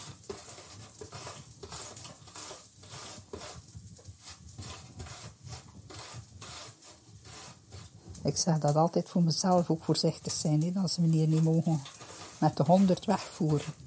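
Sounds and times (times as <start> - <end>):
apple being grated in a kitchen: 0.0 - 8.6, 9.4 - 13.8
speech: 8.2 - 13.8.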